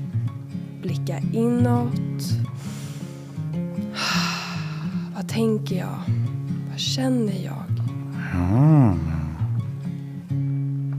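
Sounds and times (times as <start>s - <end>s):
soft sustained humming music: 0.0s - 10.9s
speech: 0.8s - 2.7s, 5.4s - 6.2s, 6.8s - 7.7s, 8.3s - 9.1s
deep breath in and out: 2.6s - 5.2s.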